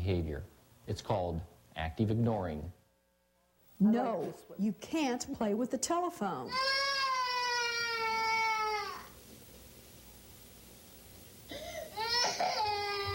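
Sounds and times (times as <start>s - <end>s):
speech: 0.0s - 2.8s, 3.8s - 6.8s
young boy wailing in a temper tantrum: 6.5s - 9.1s, 11.9s - 13.1s.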